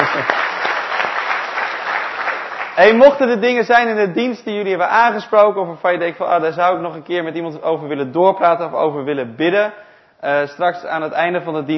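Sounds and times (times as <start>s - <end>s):
warm audience applause at a service: 0.0s - 3.0s
speech: 2.8s - 11.7s.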